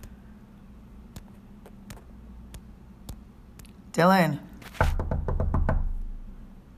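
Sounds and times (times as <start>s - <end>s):
speech: 4.0s - 4.5s
quick firm knocks on a door: 4.8s - 6.1s.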